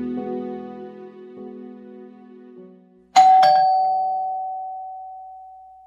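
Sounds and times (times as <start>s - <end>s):
melodic electronic doorbell at the front door of a home chiming: 3.2s - 5.8s.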